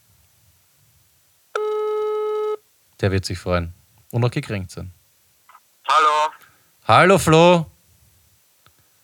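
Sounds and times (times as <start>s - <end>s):
telephone ringback tone while calling someone: 1.6s - 2.6s
speech: 3.0s - 5.0s, 6.9s - 7.7s.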